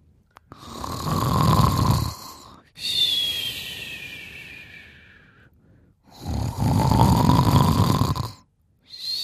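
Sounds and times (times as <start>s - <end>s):
father fast asleep snoring loudly: 0.5s - 2.6s, 6.1s - 8.4s.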